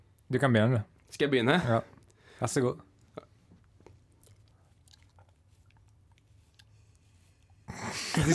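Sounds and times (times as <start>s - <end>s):
speech: 0.3s - 3.3s
licking and chewing a large biscuit: 3.0s - 7.6s.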